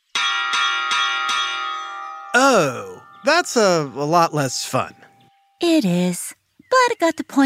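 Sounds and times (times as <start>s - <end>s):
ice cream truck bell ringing: 0.1s - 5.8s
speech: 2.4s - 7.4s.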